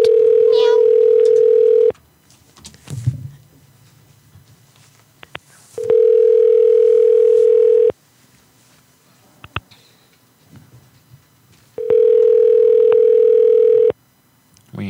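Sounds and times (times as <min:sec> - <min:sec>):
outgoing phone call ringing tone through a handset: 0:00.0 - 0:01.9, 0:05.8 - 0:08.0, 0:11.8 - 0:14.0.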